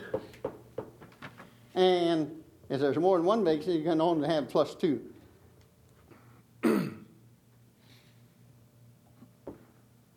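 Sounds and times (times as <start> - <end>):
faint hum: 0.0 - 10.1
speech: 1.8 - 5.1
person clearing throat: 6.6 - 7.2.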